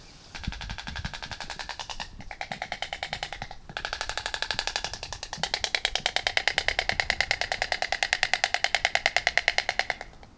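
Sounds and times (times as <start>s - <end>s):
Ciconia ciconia clicking: 0.0s - 10.3s.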